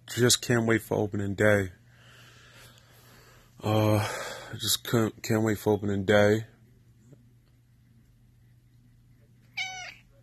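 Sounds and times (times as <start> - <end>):
faint low hum: 0.0 - 10.2
speech: 0.2 - 1.8, 3.6 - 6.5
black short-haired Bombay cat meowing: 9.5 - 10.1.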